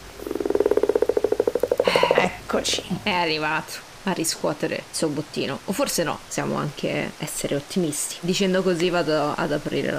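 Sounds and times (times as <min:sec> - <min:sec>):
toad croaking trill outside a door: 0:00.2 - 0:02.3
speech: 0:02.2 - 0:09.9.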